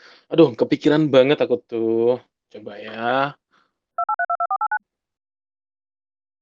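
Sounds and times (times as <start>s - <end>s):
speech: 0.3s - 3.4s
telephone keypad dialing beeps: 4.0s - 4.8s
telephone ringing tone of a call to Malaysia: 4.0s - 4.8s.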